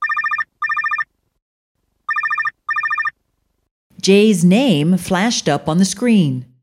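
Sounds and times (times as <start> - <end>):
cell phone ringing in bright trilling tones: 0.0 - 1.1, 2.1 - 3.2
speech: 4.0 - 6.5.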